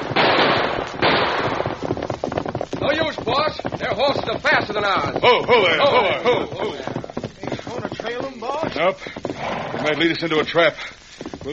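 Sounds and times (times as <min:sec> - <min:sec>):
gunshots fired at riders fleeing on horseback: 0:00.0 - 0:03.0
rattle of smaller quicker gunshot pops: 0:00.0 - 0:09.4
speech: 0:03.2 - 0:06.9, 0:08.1 - 0:11.5.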